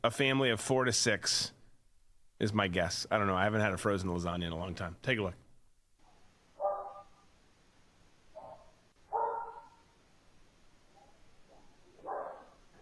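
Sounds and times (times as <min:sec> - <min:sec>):
speech: 0:00.0 - 0:01.6, 0:02.4 - 0:05.4
dog barking: 0:06.6 - 0:07.2, 0:08.4 - 0:09.9, 0:11.0 - 0:12.8.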